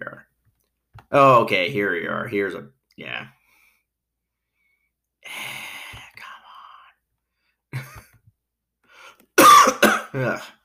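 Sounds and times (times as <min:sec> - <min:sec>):
speech: 0:01.1 - 0:03.4, 0:10.2 - 0:10.6
person coughing loud harsh coughs: 0:09.4 - 0:10.5.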